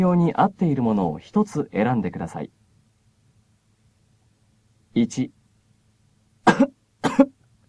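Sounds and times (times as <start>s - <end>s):
speech: 0.0s - 2.6s, 5.0s - 5.4s, 6.5s - 7.4s
person coughing: 6.4s - 7.4s.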